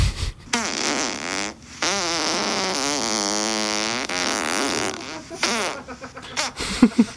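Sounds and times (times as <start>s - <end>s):
farting: 0.0s - 6.6s
laughter: 5.0s - 7.1s.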